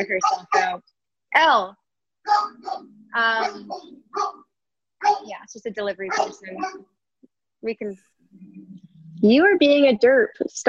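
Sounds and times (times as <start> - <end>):
speech: 0.0 - 4.4, 5.0 - 6.9, 7.6 - 10.6
dog barking: 0.1 - 0.8, 2.2 - 5.3, 6.0 - 6.9.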